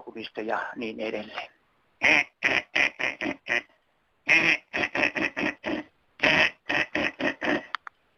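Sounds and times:
speech: 0.2s - 2.6s
duck quacking loudly: 2.0s - 3.7s, 4.3s - 7.7s.

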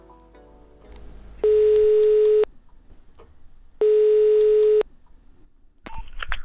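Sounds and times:
long steady electronic telephone ringing tones: 1.4s - 2.5s, 3.8s - 4.9s.

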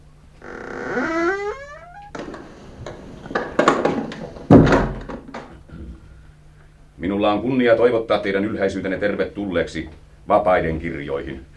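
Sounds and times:
door creaking on its hinges with a rising squeal: 0.4s - 5.5s
door shutting with clunks: 0.9s - 5.4s
speech: 7.2s - 11.5s.

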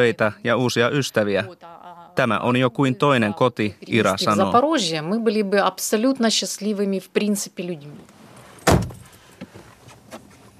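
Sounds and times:
speech: 0.0s - 8.2s
shuffling and rustling of people getting into a car: 8.2s - 10.5s
solid car door thumping shut: 8.6s - 9.1s.

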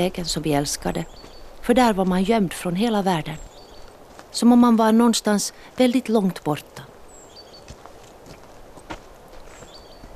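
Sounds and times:
speech: 0.0s - 3.5s, 4.3s - 6.9s
bird chirps: 0.6s - 1.5s, 3.0s - 4.0s, 7.1s - 7.8s, 9.5s - 10.1s
footsteps of a woman and a man with a walking cane strolling: 0.9s - 10.1s.

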